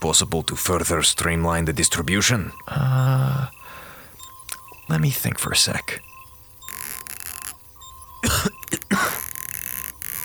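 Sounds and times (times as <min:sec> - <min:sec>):
speech: 0:00.0 - 0:03.6, 0:04.9 - 0:06.1
steady hiss: 0:00.0 - 0:10.2
person coughing harshly: 0:08.2 - 0:09.2.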